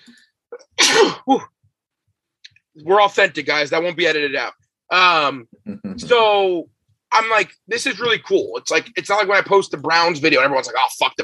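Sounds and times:
person sneezing: 0.8 - 1.5
speech: 1.3 - 1.5, 2.8 - 11.2.

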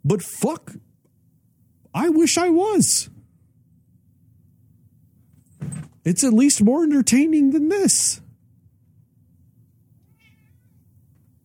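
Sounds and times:
low rumbling hum: 0.0 - 10.1
speech: 0.1 - 0.8, 2.0 - 3.2, 6.0 - 8.2
cat meowing: 10.0 - 10.8.

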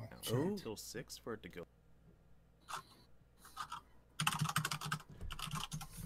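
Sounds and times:
speech: 0.2 - 1.8
typing on a computer keyboard: 3.6 - 6.0.

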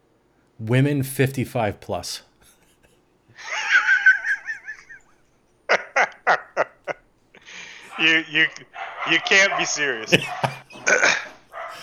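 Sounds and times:
speech: 0.6 - 2.3, 8.0 - 11.1
laughter: 2.4 - 11.8
dog barking: 7.9 - 11.8.

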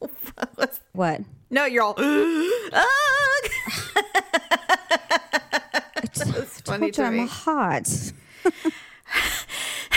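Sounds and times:
speech: 1.0 - 3.0, 6.8 - 8.8
laughter: 2.8 - 6.7
heavy breathing: 8.1 - 9.9.

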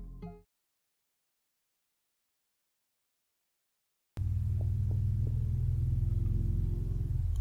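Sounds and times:
motorcycles riding past outside: 4.2 - 7.3.

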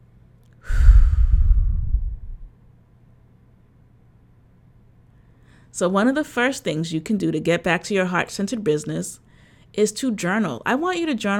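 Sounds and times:
deep breath in and out: 0.6 - 2.5, 5.1 - 5.7, 9.3 - 9.7
speech: 5.8 - 11.3.

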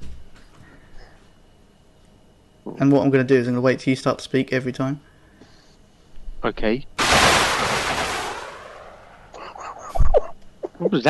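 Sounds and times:
speech: 2.6 - 5.1, 6.4 - 6.9
rocket launcher firing with a whooshing roar: 7.0 - 9.4
laughter: 9.4 - 11.0.

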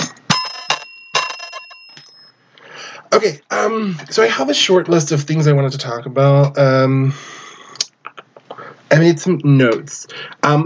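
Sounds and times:
small bright bell ringing: 0.3 - 2.4
speech: 3.1 - 7.4, 9.0 - 10.6.

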